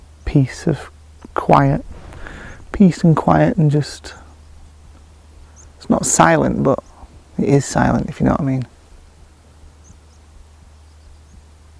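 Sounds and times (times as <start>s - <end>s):
low wind in the countryside: 0.0s - 11.7s
speech: 0.3s - 2.0s, 2.8s - 4.2s, 5.8s - 8.7s
faint birds twittering: 1.8s - 8.0s, 8.6s - 11.7s.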